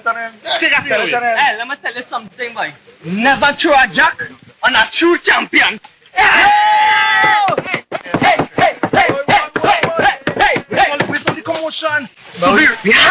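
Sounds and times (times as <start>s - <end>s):
speech: 0.0s - 8.4s, 11.7s - 13.0s
sharp knocks on a table tapping out a rhythm: 7.2s - 11.4s.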